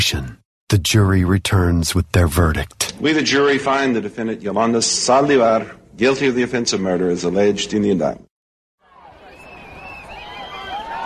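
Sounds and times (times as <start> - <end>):
speech: 0.0 - 8.3
large outdoor crowd outside courthouse cheering and shouting: 8.8 - 11.0.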